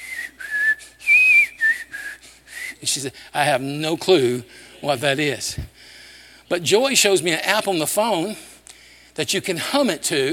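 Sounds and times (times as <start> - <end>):
person whistling a hymn tune: 0.0 - 2.8
speech: 2.8 - 5.7, 6.5 - 8.5, 9.2 - 10.3.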